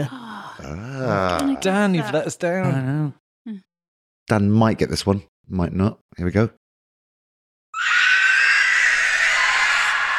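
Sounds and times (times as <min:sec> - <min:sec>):
speech: 0:00.0 - 0:03.7, 0:04.3 - 0:06.6
piercing rasping creature shriek sound effect: 0:07.8 - 0:10.1.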